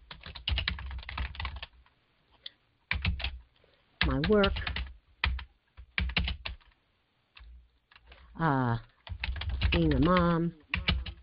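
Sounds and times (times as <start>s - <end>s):
typing on a computer keyboard: 0.1s - 1.8s, 2.9s - 3.4s, 4.0s - 6.8s, 8.8s - 11.2s
speech: 4.1s - 4.7s, 8.4s - 8.9s, 9.8s - 10.6s.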